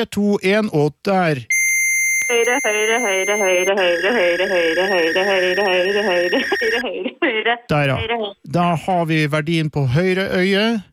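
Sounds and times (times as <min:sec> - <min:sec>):
speech: 0:00.0 - 0:01.5, 0:02.3 - 0:10.9
high-pitched electronic beep tone from a phone app measuring the right eye: 0:01.5 - 0:06.8.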